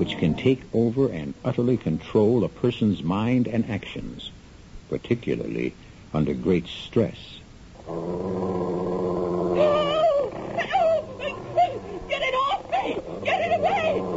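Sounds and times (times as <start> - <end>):
wolf attacking a man growling: 0.0 - 0.5, 7.8 - 14.1
speech: 0.0 - 8.5
wolf whimpering and whining: 8.4 - 14.1.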